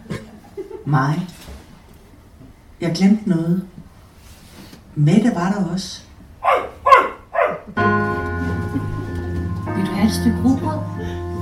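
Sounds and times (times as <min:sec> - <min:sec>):
speech: 0:00.9 - 0:01.4, 0:02.8 - 0:03.8, 0:05.0 - 0:06.1, 0:10.0 - 0:11.2
dog barking: 0:06.4 - 0:07.8
sustained tonal drone: 0:07.8 - 0:11.4.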